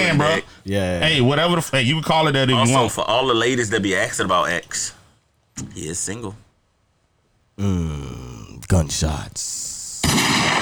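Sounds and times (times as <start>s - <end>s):
speech: 0.1s - 5.0s, 5.6s - 6.4s, 7.6s - 10.6s
drawn-out vocal tone: 7.6s - 8.7s
gunshot sound effects: 10.0s - 10.6s.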